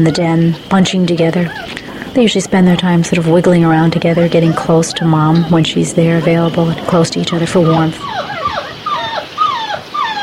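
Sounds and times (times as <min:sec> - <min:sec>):
speech: 0:00.0 - 0:08.2
week-and-a-half-old wolf pups whimpering in their den: 0:01.2 - 0:02.1, 0:03.2 - 0:10.2.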